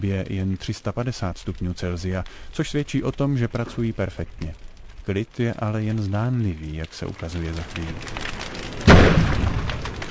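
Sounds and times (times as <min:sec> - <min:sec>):
speech: 0:00.0 - 0:08.5
explosion inside a burning building during a structural fire test: 0:08.6 - 0:10.1.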